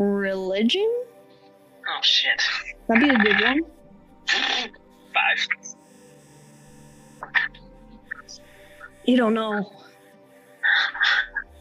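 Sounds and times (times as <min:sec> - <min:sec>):
speech: 0:00.0 - 0:01.0, 0:02.0 - 0:05.6, 0:09.0 - 0:09.8
goose honking: 0:01.9 - 0:03.7, 0:04.3 - 0:05.6, 0:07.2 - 0:09.0, 0:10.6 - 0:11.5.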